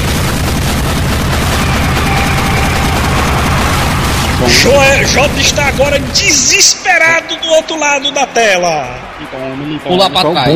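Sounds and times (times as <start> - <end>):
shotgun gunfire in a video game: 0.0 - 6.5
speech: 4.5 - 10.5.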